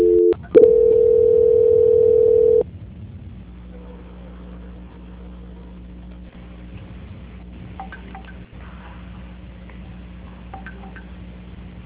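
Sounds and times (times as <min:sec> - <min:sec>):
telephone line tone while a call is transferred: 0:00.0 - 0:02.6.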